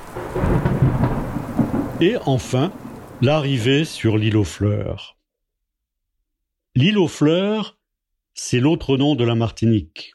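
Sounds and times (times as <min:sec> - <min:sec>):
deep thunder rumbling in a thunderstorm at sea: 0:00.0 - 0:04.2
heavy rain pouring in a thunderstorm at sea: 0:00.0 - 0:04.6
speech: 0:02.0 - 0:05.2, 0:06.8 - 0:07.8, 0:08.4 - 0:10.1.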